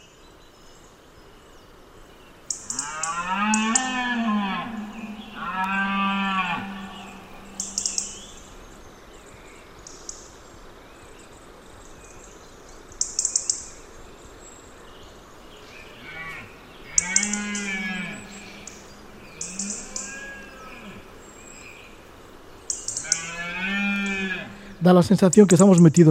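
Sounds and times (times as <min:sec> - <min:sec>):
birds calling: 0:00.8 - 0:26.0
crow giving sharp high-pitched cries: 0:02.7 - 0:08.2, 0:17.0 - 0:18.7
deer stags bellowing during the autumn rut in a valley at dusk: 0:02.7 - 0:08.5, 0:16.0 - 0:21.2, 0:23.0 - 0:24.8
speech: 0:24.8 - 0:26.0.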